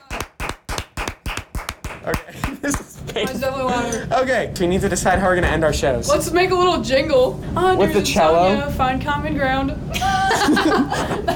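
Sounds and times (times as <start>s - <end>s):
loud sharp hand claps: 0.0s - 3.0s
speech: 2.1s - 11.3s
laughter: 10.0s - 11.3s.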